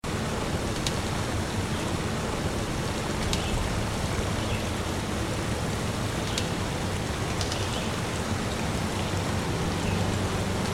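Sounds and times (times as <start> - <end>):
nature sounds: 0.0 - 10.7.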